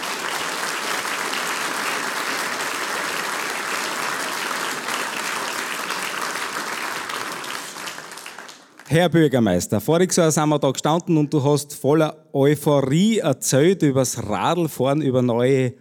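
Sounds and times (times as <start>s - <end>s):
large audience applauding in an event hall: 0.0s - 9.0s
speech: 8.9s - 15.7s.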